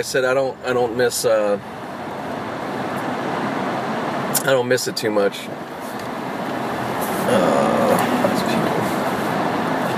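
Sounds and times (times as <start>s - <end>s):
speech: 0.0s - 1.8s, 4.4s - 5.7s, 7.3s - 7.7s
cars driving past with road rumble: 1.6s - 4.6s, 5.4s - 9.9s.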